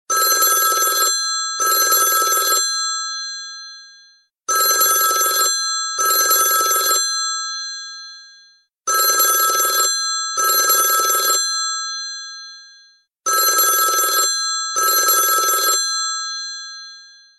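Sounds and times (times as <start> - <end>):
desk telephone ringing: 0.1 - 2.7, 4.5 - 7.1, 8.9 - 11.5, 13.3 - 17.3.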